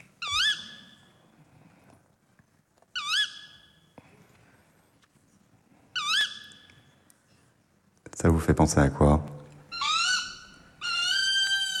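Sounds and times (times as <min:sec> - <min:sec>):
tawny owl calling: 0:00.2 - 0:01.1, 0:03.0 - 0:03.8, 0:06.0 - 0:06.9, 0:09.7 - 0:11.7
speech: 0:08.2 - 0:09.3.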